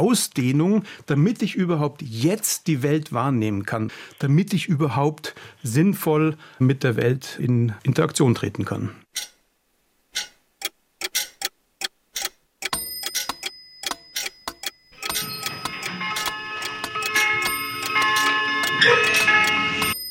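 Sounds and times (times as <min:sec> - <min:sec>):
speech: 0:00.0 - 0:09.3
clocks ticking: 0:10.2 - 0:20.0
faint ringing tones: 0:12.6 - 0:20.0.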